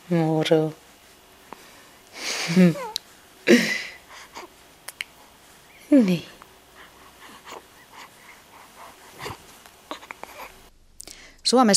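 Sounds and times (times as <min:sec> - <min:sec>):
speech: 0:00.1 - 0:00.8, 0:02.5 - 0:02.9, 0:03.5 - 0:03.8, 0:05.9 - 0:06.4, 0:11.5 - 0:11.7
newborn baby mouth clicks: 0:04.8 - 0:05.2
newborn baby yawning: 0:09.1 - 0:10.7.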